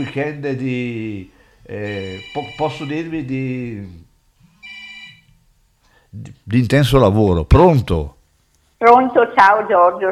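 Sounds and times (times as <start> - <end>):
speech: 0.0 - 4.0, 6.1 - 8.2, 8.8 - 10.0
low steady background: 0.0 - 10.0
electronic telephone ringtone signalling an incoming call: 1.9 - 2.9, 4.6 - 5.3.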